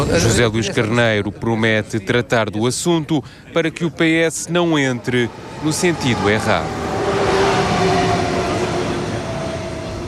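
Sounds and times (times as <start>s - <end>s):
speech: 0.0s - 7.0s
commuter train rumbling along the rails: 5.0s - 10.0s.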